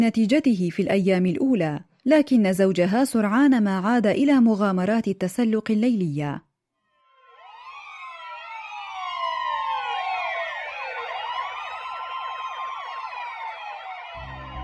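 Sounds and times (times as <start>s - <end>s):
speech: 0.0s - 6.5s
police car siren wailing at night: 7.0s - 14.6s.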